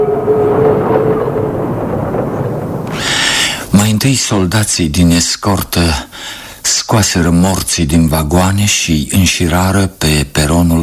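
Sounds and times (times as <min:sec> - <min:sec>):
thin metallic squeal of a train: 0:00.0 - 0:02.4
train rumbling along the tracks arriving at Khabarovsk: 0:00.0 - 0:03.8
speech: 0:04.0 - 0:10.8.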